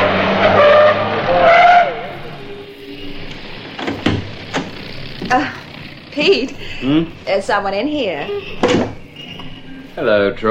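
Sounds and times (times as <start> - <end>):
taxi cab engine idling: 0.0 - 10.4
taxi cab tires screeching to a stop on a street corner: 0.0 - 10.4
speech: 6.2 - 8.9, 10.0 - 10.4.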